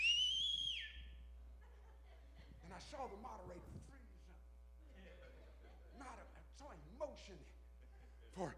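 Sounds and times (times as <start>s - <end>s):
loud sustained high-pitched human whistle: 0.0s - 1.2s
faint low murmur: 0.7s - 8.5s
laughter: 1.6s - 3.0s, 4.8s - 6.5s, 7.6s - 8.5s
speech: 2.8s - 4.1s, 6.0s - 7.6s, 8.3s - 8.5s.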